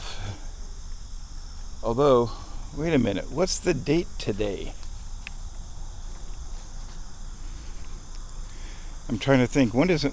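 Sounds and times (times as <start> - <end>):
many mosquitoes buzzing outdoors: 0.0 - 10.1
speech: 1.8 - 4.8, 9.1 - 10.1.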